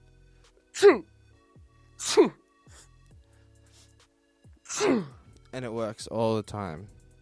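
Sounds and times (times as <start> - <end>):
exaggerated fake sneezes: 0.8 - 1.0, 2.0 - 2.4, 4.7 - 5.2
speech: 0.8 - 1.1, 2.1 - 2.4, 4.8 - 7.0.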